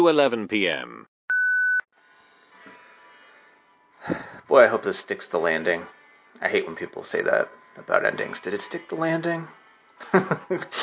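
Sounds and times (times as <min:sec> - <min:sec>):
speech: 0:00.0 - 0:01.1, 0:04.0 - 0:10.8
voicemail prompt electronic beep: 0:01.3 - 0:01.9
laughter: 0:10.0 - 0:10.8.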